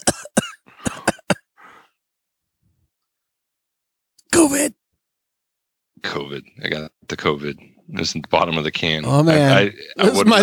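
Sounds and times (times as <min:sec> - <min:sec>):
person coughing: 0:00.0 - 0:01.5
rasping throat clearing: 0:00.0 - 0:01.5
speech: 0:04.4 - 0:04.8, 0:06.0 - 0:10.4.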